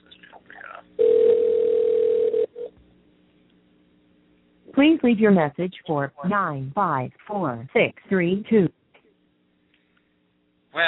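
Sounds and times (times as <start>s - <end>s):
telephone dial tone: 1.0s - 2.7s
speech: 4.8s - 8.8s.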